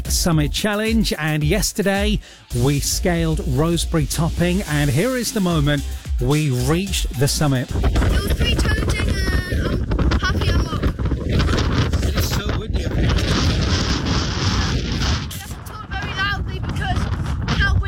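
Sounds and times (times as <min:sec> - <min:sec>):
speech: 0:00.1 - 0:08.9
strong gusting wind on a hilltop buffeting the microphone: 0:07.4 - 0:17.8.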